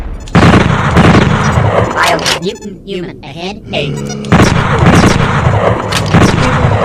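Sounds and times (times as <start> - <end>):
automatic bolt gun firing in a video game: 0.3 - 1.5, 4.3 - 6.7
speech: 2.5 - 5.0.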